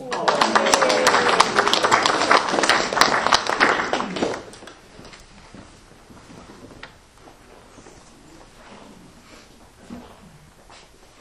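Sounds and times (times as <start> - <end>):
a handful of people clapping: 0.0 - 5.2.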